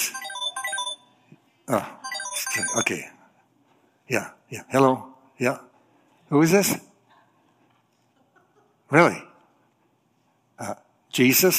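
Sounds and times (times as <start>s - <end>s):
phone ringtone playing a short electronic melody: 0.0s - 1.1s, 2.0s - 2.9s
speech: 1.7s - 3.2s, 4.1s - 5.7s, 6.3s - 6.9s, 8.9s - 9.3s, 10.6s - 11.5s.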